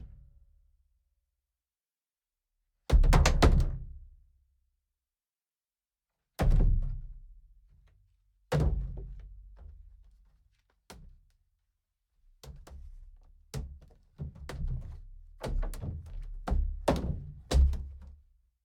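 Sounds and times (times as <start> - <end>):
kick drum layered with crash cymbal: 2.9 - 3.9, 6.4 - 7.1, 15.5 - 18.0.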